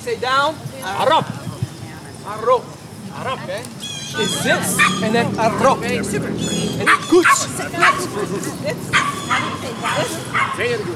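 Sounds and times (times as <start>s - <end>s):
speech: 0.0s - 1.5s, 2.2s - 10.9s
dog yipping and barking with a whimpering edge: 4.4s - 5.6s, 6.8s - 8.1s, 8.9s - 10.6s.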